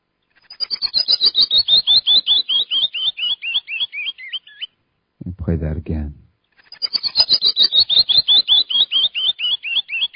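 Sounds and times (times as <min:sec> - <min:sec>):
canyon wren singing a cascade of whistled notes: 0:00.4 - 0:04.8, 0:06.5 - 0:10.1
speech: 0:05.5 - 0:06.2.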